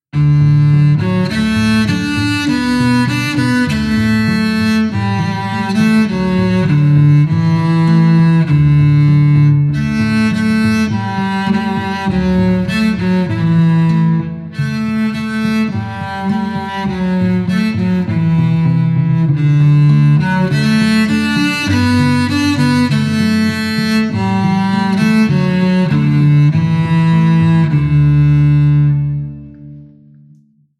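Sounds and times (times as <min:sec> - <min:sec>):
violins without bass bar: 0:00.2 - 0:29.9.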